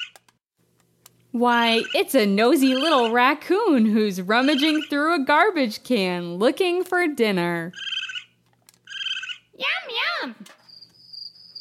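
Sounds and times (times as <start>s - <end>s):
speech: 1.3s - 7.9s
cricket chirping in a high-pitched trill: 10.6s - 11.5s.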